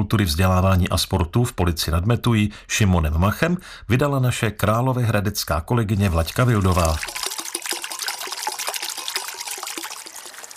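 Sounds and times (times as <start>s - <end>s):
speech: 0.0s - 7.2s
babbling splashing water: 6.0s - 10.5s
small knocks and sloshes: 6.0s - 10.5s.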